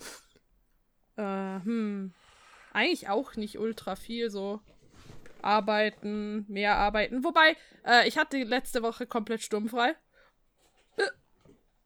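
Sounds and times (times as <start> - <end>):
faint breathy sound: 1.6 - 2.9
speech: 2.8 - 4.8, 5.4 - 10.0, 11.0 - 11.2
hiccup: 11.0 - 11.2.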